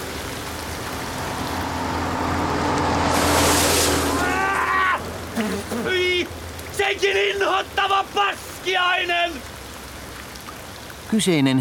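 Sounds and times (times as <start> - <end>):
heavy rain falling late in the day: 0.0 - 11.1
short tonal sounds: 0.3 - 6.7
speech: 7.0 - 9.6, 11.1 - 11.5.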